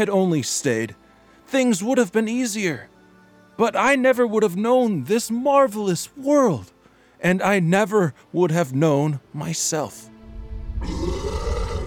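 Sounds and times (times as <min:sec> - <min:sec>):
speech: 0:00.0 - 0:03.0, 0:03.6 - 0:10.1
brief low rumble: 0:10.2 - 0:11.8
monstrous roar echoing through a castle: 0:10.4 - 0:11.8.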